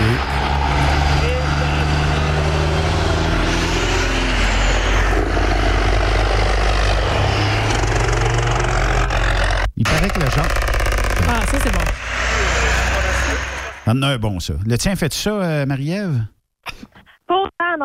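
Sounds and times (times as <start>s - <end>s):
truck engine brake roaring with deep rapid-fire rumble: 0.4s - 13.9s
speech: 13.9s - 16.9s.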